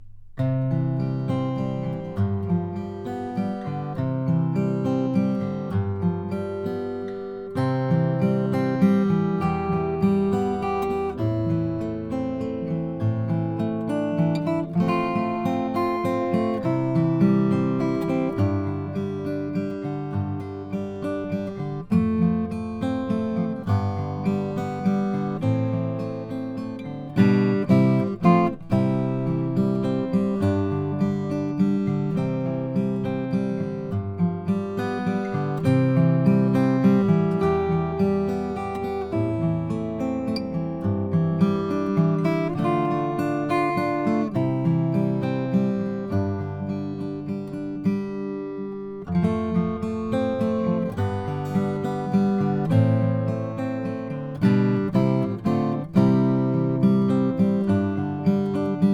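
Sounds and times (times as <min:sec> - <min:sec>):
acoustic guitar with German spruce top: 0:00.0 - 0:58.9.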